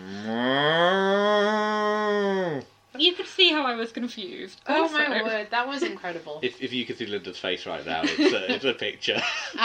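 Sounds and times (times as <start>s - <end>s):
person imitating a cow with a long low moo: 0.0s - 2.7s
speech: 3.0s - 9.6s
laughter: 8.0s - 9.6s.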